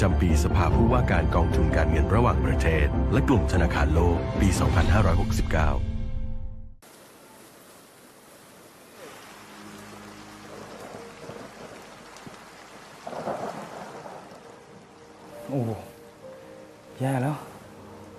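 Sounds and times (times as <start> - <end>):
speech: 0.0 - 5.9, 15.5 - 15.9, 17.0 - 17.5
steady heavy rain: 6.8 - 18.1
low rumbles of thunder: 9.6 - 16.0.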